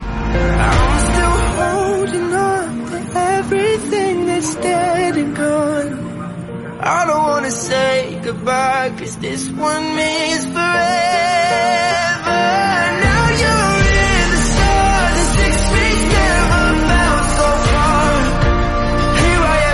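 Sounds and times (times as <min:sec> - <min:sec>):
disappointed song: 0:00.0 - 0:19.7.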